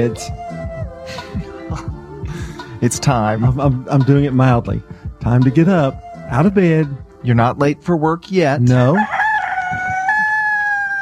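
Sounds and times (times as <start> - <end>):
speech: 0.0 - 2.0, 2.8 - 9.2
rooster crowing: 9.0 - 11.0.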